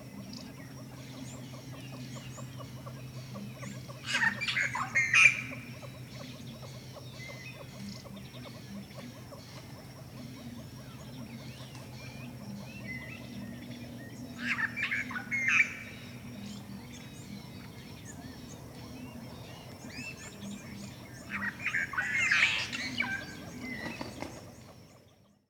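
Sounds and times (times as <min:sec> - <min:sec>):
giant glossy starling calling: 0:01.6 - 0:24.8.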